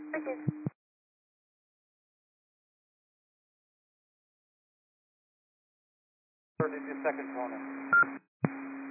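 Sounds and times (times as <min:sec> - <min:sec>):
speech: 0:00.1 - 0:00.7, 0:06.6 - 0:08.7
garbled voice over a tinny radio channel: 0:06.6 - 0:07.6
steady hum on a tinny radio channel: 0:06.6 - 0:08.2.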